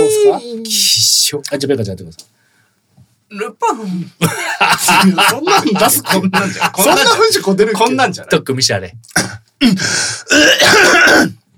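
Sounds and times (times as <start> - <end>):
speech: 0.3 - 2.4, 3.3 - 11.4
laughter: 4.2 - 7.6
person coughing and clearing the throat: 9.1 - 11.4.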